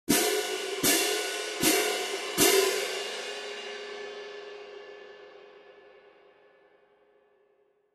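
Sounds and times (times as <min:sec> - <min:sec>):
20in concert stage cymbal pair: 0:00.1 - 0:05.8.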